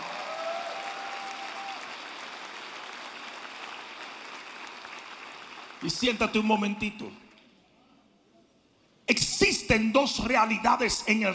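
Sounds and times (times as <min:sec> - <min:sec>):
large audience applauding: 0:00.0 - 0:06.2
speech: 0:05.8 - 0:07.2, 0:09.6 - 0:11.3.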